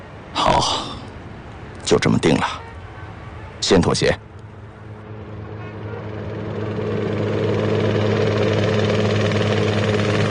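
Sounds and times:
speech: 0:01.9 - 0:02.6, 0:03.6 - 0:04.2
civil helicopter hovering with rotor thrum and engine drone: 0:04.4 - 0:10.2.

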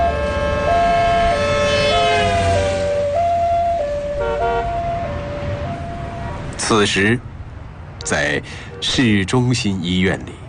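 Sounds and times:
loud two-tone ambulance siren: 0:00.0 - 0:06.5
low rumble of road traffic: 0:00.0 - 0:10.4
speech: 0:06.7 - 0:07.3, 0:08.1 - 0:10.4.

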